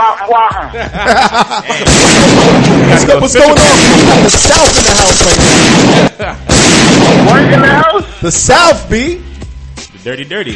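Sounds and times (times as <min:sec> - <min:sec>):
laughter: 0:00.0 - 0:03.0
speech: 0:00.3 - 0:09.3, 0:10.0 - 0:10.5
person vocally imitating gunshots: 0:01.8 - 0:02.7, 0:03.6 - 0:07.8.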